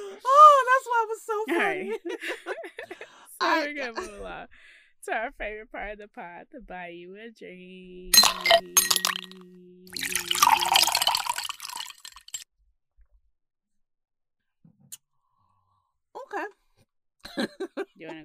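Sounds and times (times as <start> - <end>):
speech: 1.0 - 2.6, 3.4 - 10.7, 16.3 - 16.6, 17.4 - 18.2
laughter: 1.5 - 3.3, 17.3 - 18.0
glass clink: 8.2 - 12.4
water sloshing and gurgling while drinking from a glass: 8.2 - 12.4.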